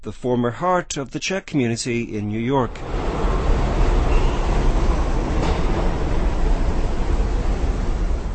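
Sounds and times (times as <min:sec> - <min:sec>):
speech: 0:00.0 - 0:03.1
rattling and rolling noise of a subway train: 0:02.7 - 0:08.3
subway train rumbling in motion: 0:02.7 - 0:08.3.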